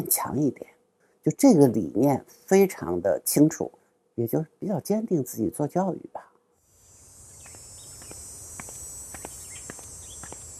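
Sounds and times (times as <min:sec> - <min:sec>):
speech: 0:00.0 - 0:06.3
high-pitched cicada drone in summer: 0:06.6 - 0:10.5.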